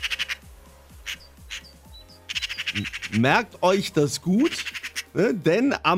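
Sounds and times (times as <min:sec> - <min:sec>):
faint chirps from other birds: 0:00.0 - 0:00.4, 0:01.0 - 0:03.2, 0:04.4 - 0:05.1
Eurasian magpie chattering in harsh rattling bursts: 0:00.0 - 0:03.3, 0:04.4 - 0:05.2
speech: 0:02.7 - 0:05.9.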